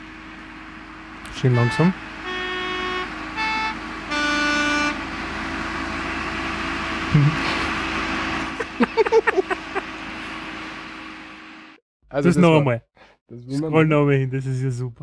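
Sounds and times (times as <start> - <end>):
engine drone of a very old yellow post bus climbing mountain roads: 0.0 - 12.7
harmonic horn blasts of a very old yellow post bus: 1.2 - 6.6
speech: 1.4 - 2.1, 12.2 - 15.0
laughter: 7.1 - 7.8, 8.5 - 10.0.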